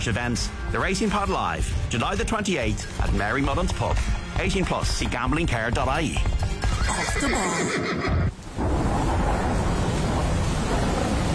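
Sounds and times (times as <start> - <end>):
speech: 0.0 - 8.4
deep rumbling thunder on a stormy night: 8.3 - 11.3
heavy rain pouring on a stormy night: 8.3 - 11.3.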